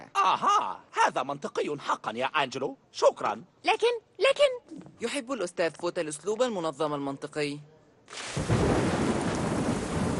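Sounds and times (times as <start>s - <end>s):
speech: 0.2s - 8.6s
heavy rain: 8.2s - 10.1s
thunder rumbling: 8.4s - 10.1s.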